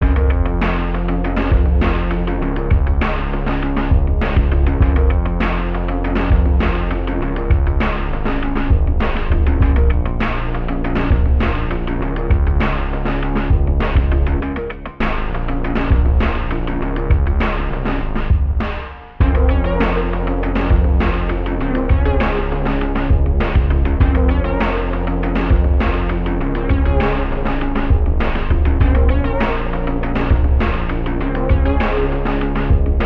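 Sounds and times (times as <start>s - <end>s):
lo-fi synthwave music: 0.0s - 33.0s.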